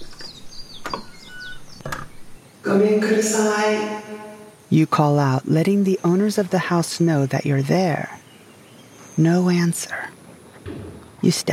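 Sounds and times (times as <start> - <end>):
doors of a big old mansion being pushed open: 0.0 - 2.3, 10.6 - 11.3
birds chirping and tweeting: 0.0 - 11.5
speech: 2.6 - 8.2, 9.2 - 10.0, 11.2 - 11.5.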